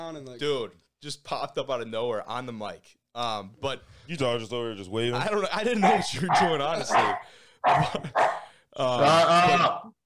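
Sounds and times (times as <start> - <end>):
speech: 0.1 - 10.0
dog barking: 5.8 - 8.5.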